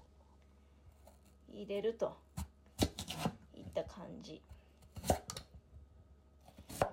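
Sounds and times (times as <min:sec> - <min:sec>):
speech: 0:01.6 - 0:02.3, 0:03.7 - 0:04.6
knife chopping vegetables on a cutting board: 0:04.9 - 0:05.4, 0:06.5 - 0:06.9.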